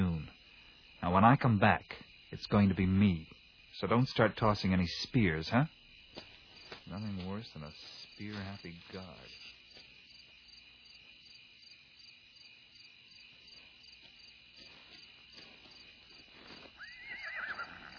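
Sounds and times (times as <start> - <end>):
crickets chirping: 0.0 - 17.9
faint outdoor ambience: 0.0 - 17.9
speech: 1.1 - 5.8, 6.9 - 9.4
horse neighing: 16.8 - 17.9.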